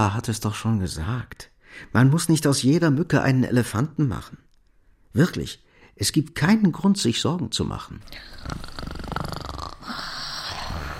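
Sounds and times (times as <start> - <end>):
speech: 0.0 - 4.5, 5.1 - 9.2
person snoring: 8.1 - 10.9.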